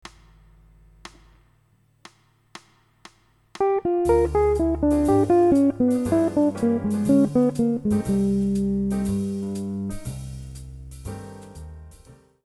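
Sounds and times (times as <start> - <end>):
minor ii V I jazz lick on guitar: 3.6 - 10.6.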